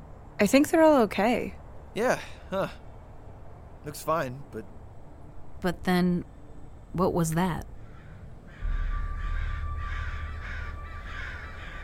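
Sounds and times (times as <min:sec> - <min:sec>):
speech: 0:00.4 - 0:02.8, 0:03.8 - 0:04.7, 0:05.6 - 0:06.3, 0:06.9 - 0:07.7
several crows cawing: 0:07.8 - 0:11.8
constant low rumble: 0:08.4 - 0:11.8.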